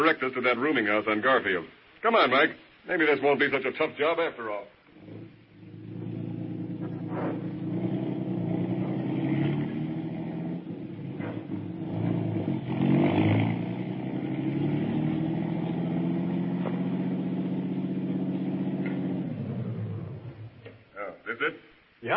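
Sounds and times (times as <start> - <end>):
speech: 0.0 - 5.2
car engine droning on a moving vehicle: 4.9 - 20.9.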